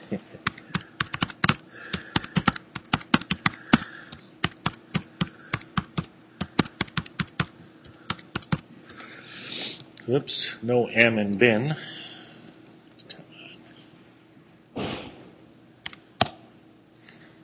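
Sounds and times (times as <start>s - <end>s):
typing on a computer keyboard: 0.4s - 8.6s
speech: 10.1s - 11.9s.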